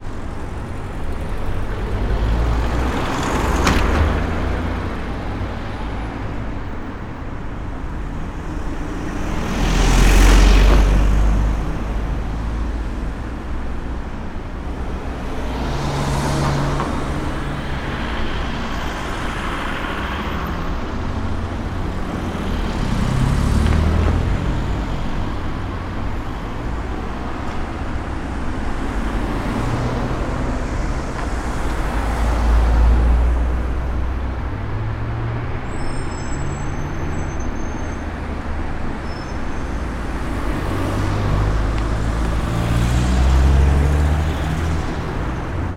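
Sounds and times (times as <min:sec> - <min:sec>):
quiet urban traffic ambience in a town: 0:00.0 - 0:45.7.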